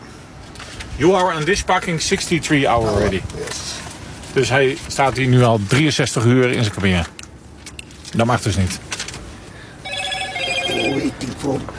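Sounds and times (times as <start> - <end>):
speech: 1.0 - 7.2, 8.1 - 8.9, 11.0 - 11.7
phone ringing inside a truck cab: 9.8 - 11.3.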